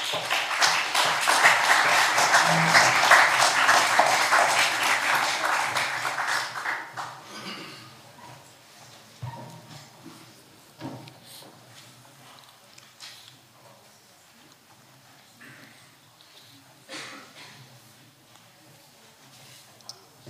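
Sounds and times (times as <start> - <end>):
audience in a hall applauding after a lecture: 0.0 - 7.2.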